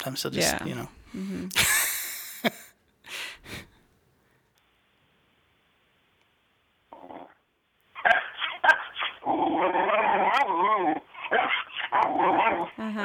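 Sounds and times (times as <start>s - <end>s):
speech: 0.0s - 2.6s
dog barking: 8.0s - 12.8s.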